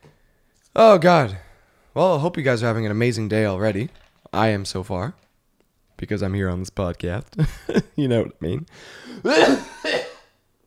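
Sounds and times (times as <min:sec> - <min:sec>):
speech: 0:00.8 - 0:01.4, 0:02.0 - 0:05.2, 0:06.0 - 0:10.0
person coughing after swallowing air: 0:09.0 - 0:10.4.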